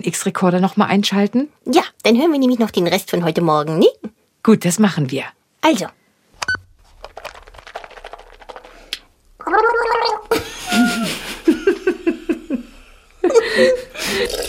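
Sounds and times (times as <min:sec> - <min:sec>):
speech: 0:00.0 - 0:06.0
person gargling and rinsing with water while brushing teeth: 0:09.4 - 0:10.3, 0:14.0 - 0:14.4
person chuckling: 0:10.2 - 0:14.4.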